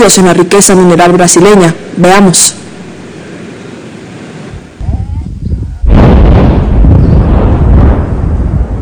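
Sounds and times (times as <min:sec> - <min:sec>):
speech: 0:00.0 - 0:02.6
mining blast boom and rolling roar at a gold mine: 0:04.5 - 0:08.8.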